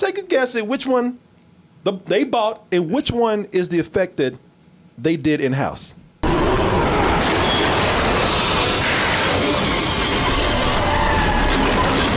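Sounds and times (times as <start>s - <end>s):
speech: 0.0s - 6.0s
train roaring past in a movie scene: 6.2s - 12.1s.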